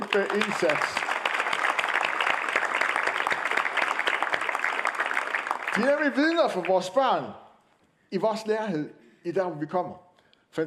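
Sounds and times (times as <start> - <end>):
room full of people applauding: 0.0 - 7.2
speech: 0.1 - 1.1, 5.8 - 7.4, 8.1 - 10.6.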